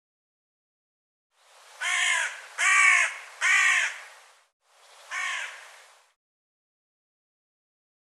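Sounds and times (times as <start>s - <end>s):
bird giving harsh nasal cawing calls: 1.8s - 4.2s, 5.0s - 5.9s.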